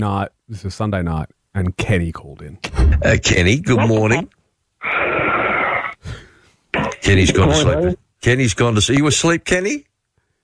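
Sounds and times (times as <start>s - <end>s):
speech: 0.0s - 5.3s, 7.0s - 9.9s
heavy breathing over a phone line: 6.0s - 6.6s.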